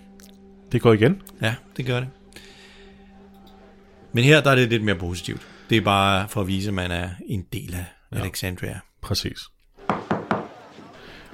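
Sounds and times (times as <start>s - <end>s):
speech: 0.7s - 2.2s, 4.1s - 9.6s
knocks on a door: 9.9s - 10.5s.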